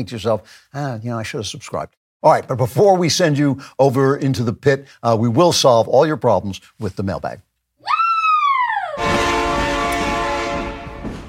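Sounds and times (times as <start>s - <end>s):
speech: 0.0s - 8.0s
loud train horn with falling Doppler pitch: 9.0s - 11.2s.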